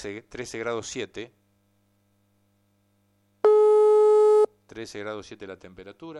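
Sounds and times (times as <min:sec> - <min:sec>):
speech: 0:00.0 - 0:01.4, 0:04.7 - 0:06.1
telephone ringing tone while placing a call: 0:03.4 - 0:04.5.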